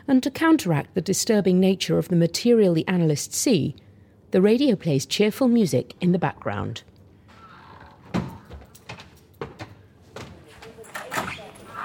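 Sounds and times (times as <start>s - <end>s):
speech: 0.1s - 6.9s
office door clunking and swinging open: 7.4s - 11.8s.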